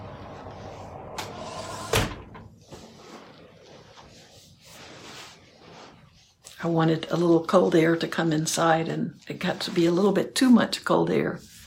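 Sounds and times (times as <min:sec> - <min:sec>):
door swinging shut with a sharp thump: 0:01.2 - 0:02.5
faint shuffling movement: 0:02.5 - 0:11.6
speech: 0:06.6 - 0:11.5.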